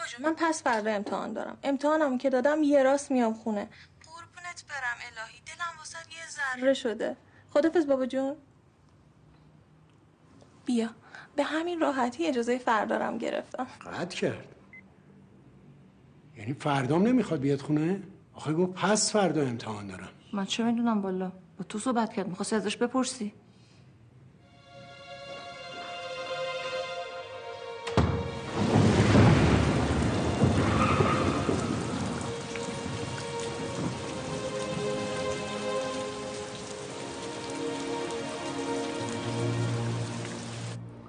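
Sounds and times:
speech: 0:00.2 - 0:03.9, 0:04.5 - 0:08.5, 0:10.7 - 0:14.6, 0:16.4 - 0:23.4
low rumble of thunder: 0:28.0 - 0:35.7
heavy rain drumming on surfaces: 0:28.0 - 0:40.8.

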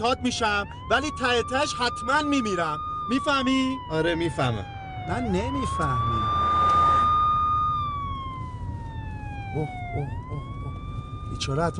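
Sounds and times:
speech: 0:00.0 - 0:06.4, 0:09.5 - 0:10.5, 0:11.4 - 0:11.7
faint low rumble of traffic: 0:00.0 - 0:11.7
wailing ambulance siren passing by: 0:00.0 - 0:11.7.

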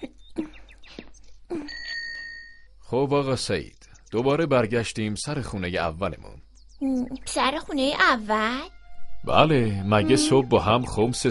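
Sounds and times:
small bell ringing: 0:01.7 - 0:02.7
speech: 0:02.9 - 0:11.2.

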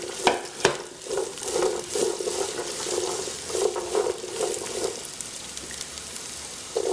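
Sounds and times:
scraping stirring strokes in a hot pan: 0:00.0 - 0:05.1
vegetables stir-frying and sizzling in a hot pan: 0:00.0 - 0:06.9.

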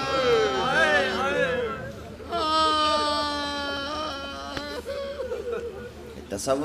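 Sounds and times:
audience wailing and sobbing: 0:00.0 - 0:06.2
laughter: 0:00.0 - 0:06.3
murmur of many voices: 0:00.0 - 0:06.6.

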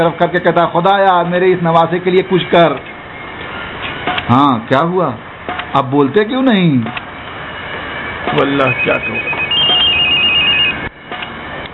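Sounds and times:
speech: 0:00.0 - 0:02.9, 0:04.3 - 0:07.0, 0:08.3 - 0:09.4
telephone ringing with a bright electronic trill for an incoming call from abroad: 0:08.6 - 0:10.9.

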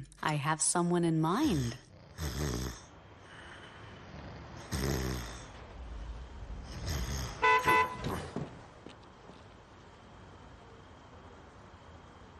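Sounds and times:
low rumble of traffic: 0:00.0 - 0:12.3
speech: 0:00.2 - 0:02.6
car horn honking: 0:07.4 - 0:08.5.

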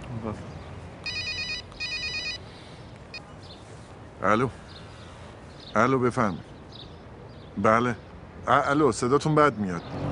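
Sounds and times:
speech: 0:00.2 - 0:00.6, 0:04.2 - 0:04.6, 0:05.8 - 0:06.5, 0:07.6 - 0:10.0
telephone ringing with high electronic trilling: 0:01.0 - 0:02.4.

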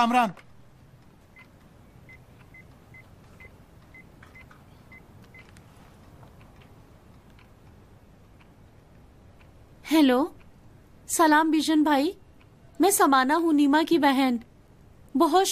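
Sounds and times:
speech: 0:00.0 - 0:00.5, 0:09.9 - 0:10.4, 0:11.1 - 0:12.2, 0:12.8 - 0:14.5, 0:15.2 - 0:15.4
low hum: 0:00.0 - 0:15.4
phone keypad beeps dialing a number: 0:01.4 - 0:05.5.

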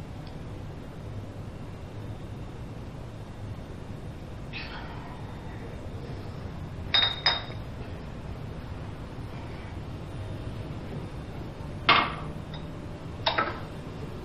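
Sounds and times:
quiet room hum: 0:00.0 - 0:14.2
dishes clinking while being handled: 0:06.9 - 0:07.6.

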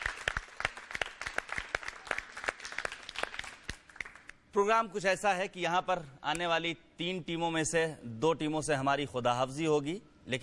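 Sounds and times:
loud audience applause: 0:00.0 - 0:04.3
speech: 0:04.5 - 0:10.4.

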